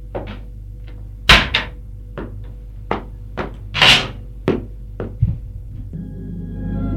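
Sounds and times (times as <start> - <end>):
wooden knocks and thumps of a woman sitting on a wooden chair: 0.0 - 5.4
wooden chair creaking faintly: 3.4 - 4.2.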